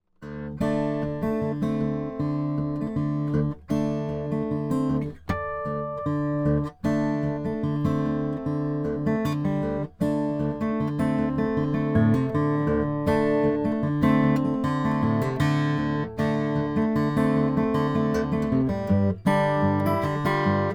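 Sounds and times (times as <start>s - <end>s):
Brazilian rosewood acoustic guitar: 0.1s - 20.7s.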